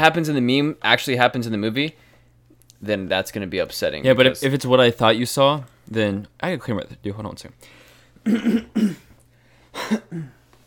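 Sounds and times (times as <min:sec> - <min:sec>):
speech: 0:00.0 - 0:02.1, 0:02.8 - 0:09.1, 0:09.8 - 0:10.4
person clearing throat: 0:08.2 - 0:09.2, 0:09.8 - 0:10.4.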